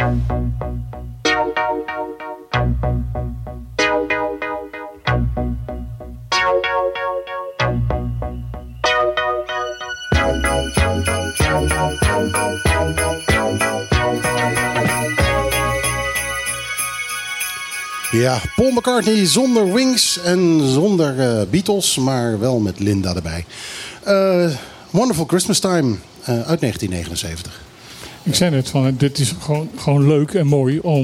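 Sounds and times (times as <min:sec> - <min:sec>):
steady bass line: 0:00.0 - 0:16.8
bright pop riff played on a Yamaha CS30 analog synthesizer: 0:00.0 - 0:20.7
speech: 0:18.2 - 0:31.0.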